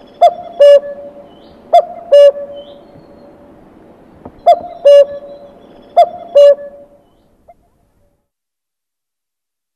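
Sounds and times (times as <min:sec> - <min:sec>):
common cuckoo calling cuck-oo: 0:00.0 - 0:03.4, 0:04.2 - 0:07.7.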